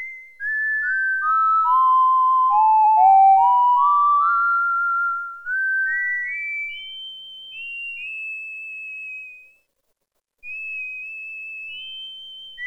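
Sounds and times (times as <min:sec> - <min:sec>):
Oberheim OB-8 synthesizer whistle factory patch: 0:00.5 - 0:06.6.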